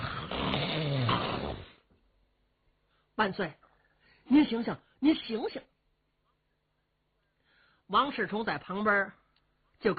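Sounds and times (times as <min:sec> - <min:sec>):
man's voice imitating loud rasping snoring: 0:00.0 - 0:01.8
speech: 0:03.2 - 0:03.6, 0:04.3 - 0:05.7, 0:07.9 - 0:09.2, 0:09.8 - 0:09.9.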